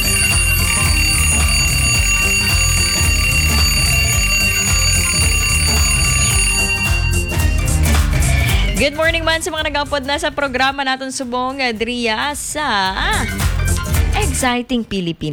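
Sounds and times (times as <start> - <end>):
alarm clock ringing with a metallic tone: 0.0 - 8.8
speech: 8.8 - 13.5, 14.3 - 15.3.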